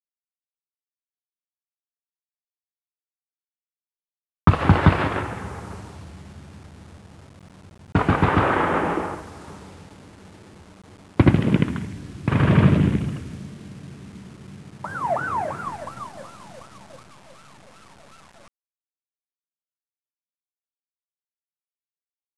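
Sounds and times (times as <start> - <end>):
bazooka ambience: 5.1 - 18.5.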